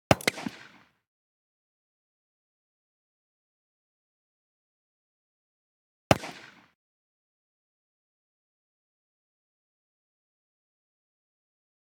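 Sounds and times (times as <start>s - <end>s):
.22 Magnum western pistol blast: 0.1s - 0.8s, 6.1s - 6.7s.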